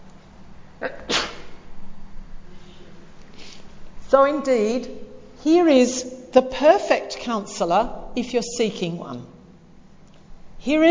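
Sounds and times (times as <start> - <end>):
person sneezing: 0.8 - 1.6
speech: 4.2 - 9.4, 10.6 - 10.8.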